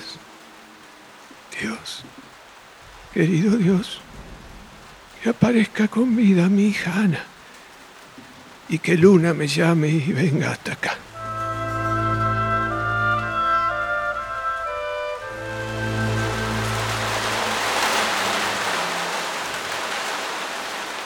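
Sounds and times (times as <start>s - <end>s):
heavy night rain beating on a window: 0.0s - 21.0s
speech: 1.6s - 2.3s, 3.1s - 4.1s, 5.2s - 7.3s, 8.7s - 11.0s
low sustained musical drone: 11.1s - 19.2s.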